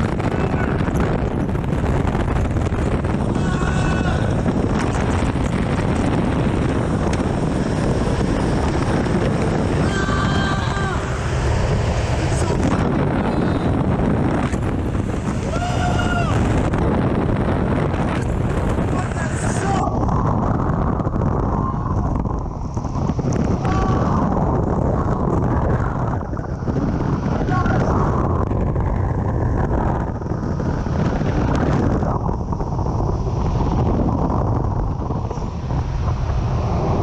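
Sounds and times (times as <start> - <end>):
roaring airflow inside a big cold wind tunnel: 0.0 - 37.0.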